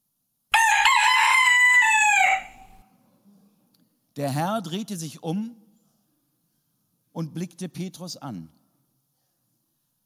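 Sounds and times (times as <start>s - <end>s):
rooster crowing: 0.5s - 2.8s
speech: 4.2s - 5.6s, 7.2s - 8.6s.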